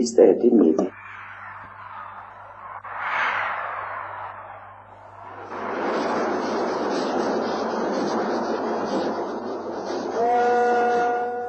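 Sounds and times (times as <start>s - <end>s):
speech: 0.0s - 1.0s
train wheels and rushing air roaring past: 3.0s - 11.4s
sustained horn-like tone: 10.1s - 11.4s.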